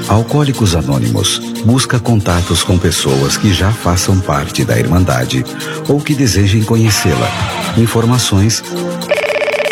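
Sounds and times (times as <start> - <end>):
speech: 0.1 - 9.1
telephone bell ringing: 9.1 - 9.7.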